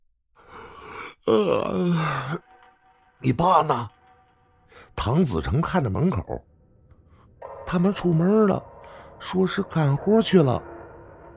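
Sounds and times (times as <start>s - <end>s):
person who has just sobered up yawning: 0.5s - 2.4s
speech: 1.3s - 2.4s, 3.2s - 4.0s, 5.0s - 6.5s, 7.7s - 10.7s.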